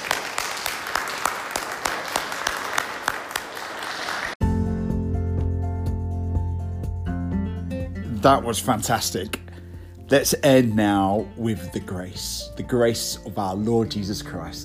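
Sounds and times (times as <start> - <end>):
crowd applauding: 0.0 - 4.4
low organ-like music: 4.4 - 14.6
speech: 8.2 - 9.4, 10.1 - 14.6.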